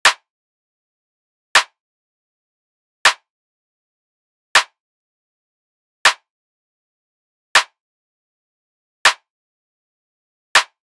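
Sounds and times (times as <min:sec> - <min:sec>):
clap: 0:01.6 - 0:01.8, 0:03.1 - 0:03.3, 0:04.6 - 0:04.8, 0:06.1 - 0:06.3, 0:07.6 - 0:07.8, 0:09.1 - 0:09.3, 0:10.6 - 0:10.8.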